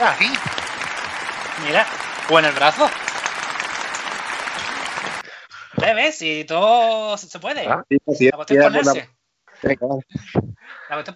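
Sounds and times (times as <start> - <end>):
speech: 0.0 - 0.6, 1.6 - 3.0, 5.8 - 11.1
crowd applauding: 0.0 - 5.2.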